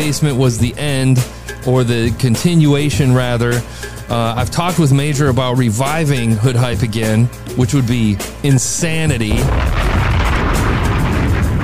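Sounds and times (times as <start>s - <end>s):
speech: 0.0s - 9.9s
explosion sound effect: 9.3s - 11.6s.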